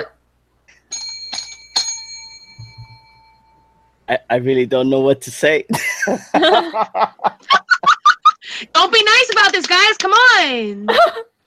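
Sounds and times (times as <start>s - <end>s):
hand bell struck to start a five-minute round: 0.8s - 4.0s
soft low thumps: 2.5s - 3.3s
speech: 4.1s - 7.2s, 8.8s - 11.3s
laughter: 5.7s - 8.4s.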